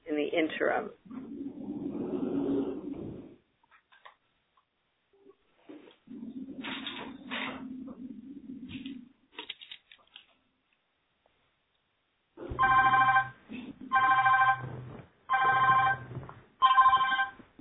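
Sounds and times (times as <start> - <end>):
speech: 0.4 - 1.2
telephone ringing during a conference call: 12.6 - 14.6, 15.3 - 17.4.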